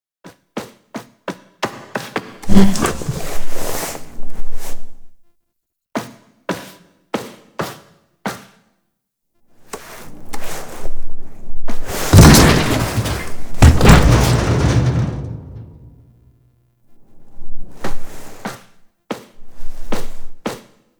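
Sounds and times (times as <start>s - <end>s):
barricade being destroyed foley: 2.4s - 3.6s, 11.9s - 16.0s.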